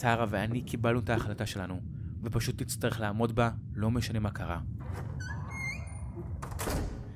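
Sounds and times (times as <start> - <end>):
speech: 0.0 - 5.4
low rumbling background: 0.0 - 7.1
door hinges creaking: 4.8 - 7.1
door slamming shut: 6.4 - 7.1.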